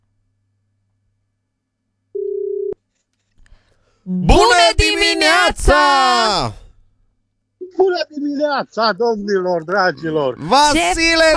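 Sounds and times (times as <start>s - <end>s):
telephone ringing tone while someone is being called: 2.2s - 2.8s
speech: 4.0s - 6.6s, 7.8s - 11.3s.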